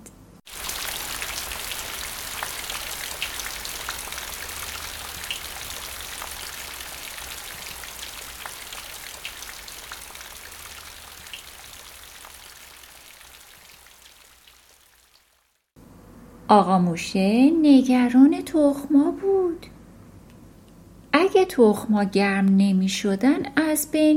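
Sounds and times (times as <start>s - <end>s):
heavy rain: 0.5s - 15.5s
speech: 16.5s - 19.7s, 21.5s - 24.1s.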